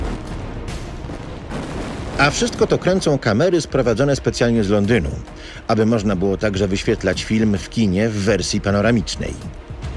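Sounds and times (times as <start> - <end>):
explosion of a speeding train blown up in a field for a film shoot: 0.0 - 3.1
sharp blasts: 0.0 - 3.3
speech: 2.2 - 9.6.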